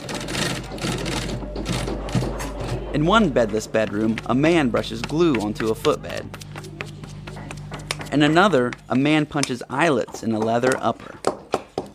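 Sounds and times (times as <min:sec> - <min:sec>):
sewing machines running in a living room home shoe workshop: 0:00.0 - 0:09.3
speech: 0:03.0 - 0:06.4, 0:08.1 - 0:11.2.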